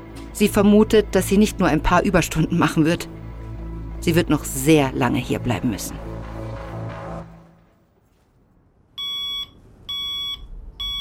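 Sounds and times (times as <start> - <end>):
music: 0.0 - 8.1
speech: 0.4 - 3.2, 4.0 - 6.1
alarm clock beeping: 9.0 - 10.9.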